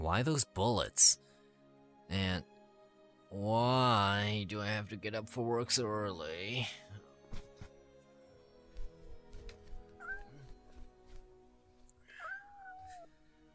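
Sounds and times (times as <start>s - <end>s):
speech: 0.1s - 1.2s, 2.1s - 2.5s, 3.3s - 6.9s
cat meowing: 10.0s - 10.6s, 12.0s - 13.1s.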